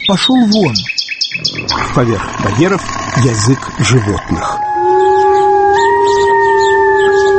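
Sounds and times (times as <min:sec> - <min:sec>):
speech: 0:00.1 - 0:04.7
wolf howling: 0:01.4 - 0:07.3.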